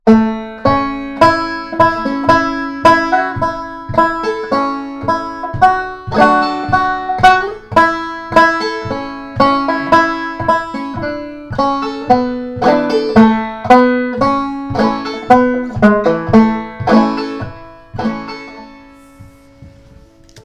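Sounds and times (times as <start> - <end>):
banjo playing: 0.1 - 19.8.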